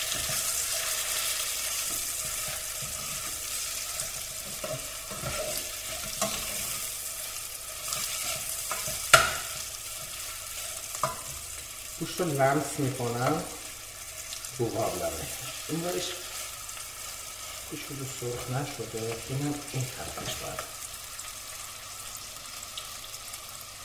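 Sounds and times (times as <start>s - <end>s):
soft scraping strokes stirring onions in a pan: 0.0s - 12.5s, 15.2s - 19.2s
onions frying in a pan: 0.0s - 23.8s
speech: 12.0s - 13.6s, 14.6s - 16.2s, 17.7s - 20.8s.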